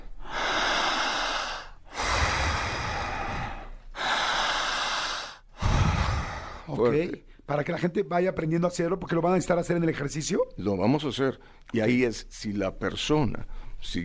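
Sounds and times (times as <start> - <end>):
deep forceful breathing through the mouth: 0.0 - 6.8
speech: 6.7 - 14.0.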